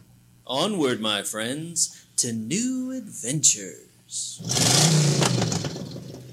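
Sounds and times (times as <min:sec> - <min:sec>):
speech: 0:00.5 - 0:05.3
heavy bus engine revving at night: 0:04.4 - 0:06.3.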